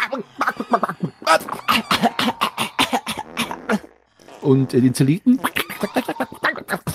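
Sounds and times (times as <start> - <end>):
voice imitating harsh coughing, gasping and wheezing: 0.0 - 3.9, 5.3 - 6.9
speech: 0.1 - 0.8, 4.5 - 5.5.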